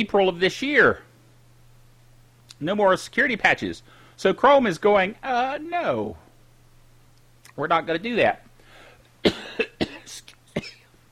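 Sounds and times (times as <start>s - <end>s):
speech: 0.0s - 1.1s, 2.6s - 6.2s, 7.6s - 8.4s
faint steady hum: 0.0s - 11.1s
person coughing: 9.2s - 11.0s.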